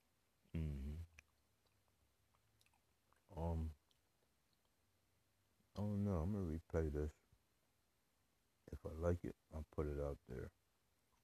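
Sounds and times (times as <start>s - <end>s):
short voiced hums from the eater: 0.5s - 1.2s
chewing and lip smacking on a beef stick: 1.1s - 4.8s
speech: 5.8s - 7.2s, 8.8s - 10.6s.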